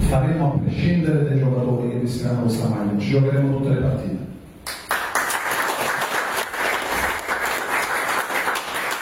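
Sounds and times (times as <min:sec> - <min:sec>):
speech: 0:00.1 - 0:04.3
audience applause: 0:04.7 - 0:08.9.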